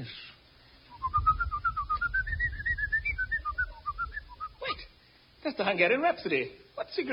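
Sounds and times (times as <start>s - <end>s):
speech: 0.0s - 0.3s, 5.5s - 7.1s
person whistling a quick bouncy melody: 0.9s - 4.7s
low rumbling background: 0.9s - 5.0s.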